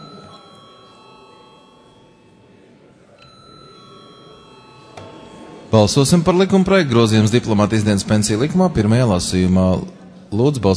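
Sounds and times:
electric bell ringing in a parliament chamber before a vote: 0:00.0 - 0:06.2
low murmur: 0:00.0 - 0:10.7
speech: 0:05.7 - 0:10.7.

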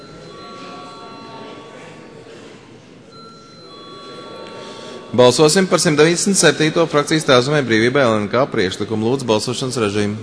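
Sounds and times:
electric bell ringing to call a parliamentary vote: 0:00.0 - 0:02.3, 0:03.0 - 0:08.2
low noise: 0:00.0 - 0:10.2
speech: 0:05.1 - 0:10.2.

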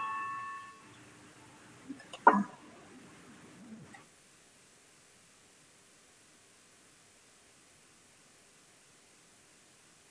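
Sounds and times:
parliament voting bell electronic chime: 0:00.0 - 0:00.9.

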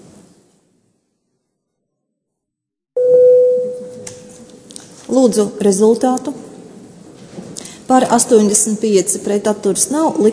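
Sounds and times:
parliamentary voting bell steady electronic tone: 0:03.0 - 0:04.5
speech: 0:05.1 - 0:06.5, 0:07.9 - 0:10.3.

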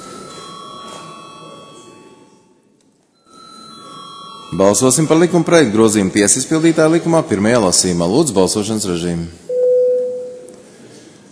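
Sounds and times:
bell ringing in a parliament chamber to call a vote: 0:00.0 - 0:02.6, 0:03.2 - 0:06.0
speech: 0:04.5 - 0:09.5.

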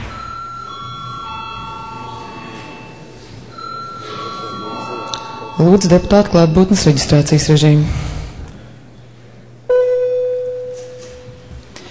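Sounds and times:
electric bell ringing in a parliament chamber: 0:00.0 - 0:06.9, 0:09.7 - 0:11.5
low hum: 0:00.0 - 0:11.9
speech: 0:05.6 - 0:08.0.

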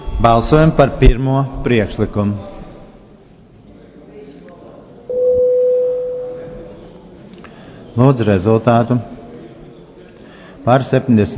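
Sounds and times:
speech: 0:00.2 - 0:02.5, 0:08.0 - 0:09.1, 0:10.6 - 0:11.3
parliamentary voting bell electronic signal tone: 0:05.1 - 0:06.7.

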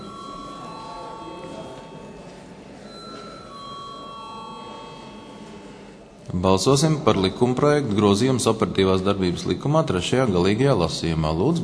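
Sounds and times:
parliament voting call bell ringing: 0:00.0 - 0:06.1
faint murmur: 0:00.0 - 0:11.6
speech: 0:06.3 - 0:11.6.

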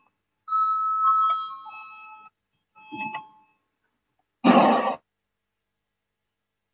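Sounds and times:
parliament voting bell chime with sustained electronic tone: 0:00.5 - 0:03.6.

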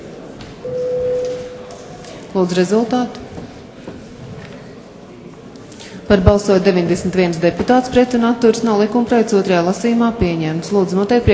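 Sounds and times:
parliament voting bell electronic tone: 0:00.7 - 0:01.7
speech: 0:02.3 - 0:03.2, 0:06.1 - 0:11.3.

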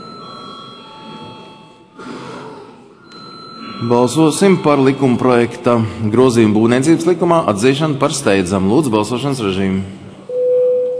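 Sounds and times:
electric voting bell ringing in a parliament: 0:00.0 - 0:02.0, 0:03.0 - 0:05.6
speech: 0:03.8 - 0:10.0.

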